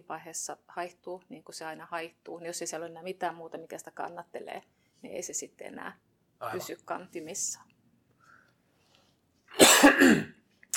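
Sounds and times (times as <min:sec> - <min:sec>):
speech: 0:00.1 - 0:07.7
small cough: 0:09.5 - 0:10.4.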